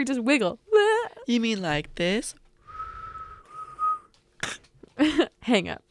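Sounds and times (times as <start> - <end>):
speech: 0.0 - 2.4, 5.0 - 5.8
person whistling one steady held note: 2.7 - 4.1.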